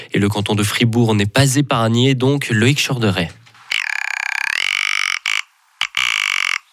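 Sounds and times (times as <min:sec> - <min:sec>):
speech: 0:00.2 - 0:03.4
rock ptarmigan giving a harsh rattling croak: 0:02.6 - 0:06.7.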